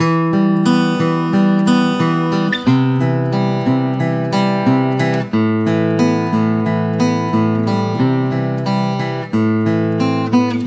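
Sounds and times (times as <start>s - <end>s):
guitars playing in E minor: 0.0s - 10.6s.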